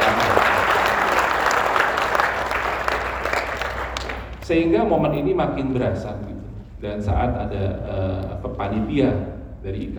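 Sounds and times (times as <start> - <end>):
audience applause at a university event: 0.0 - 4.4
speech: 4.5 - 9.9.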